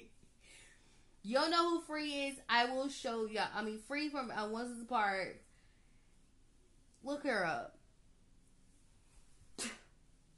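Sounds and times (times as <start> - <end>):
speech: 1.2 - 5.4, 7.0 - 7.8
person sneezing: 9.6 - 10.0.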